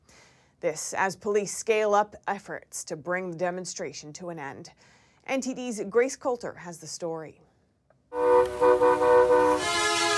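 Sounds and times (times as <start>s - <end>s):
speech: 0.6s - 7.5s
truck air horns honking: 8.1s - 10.1s.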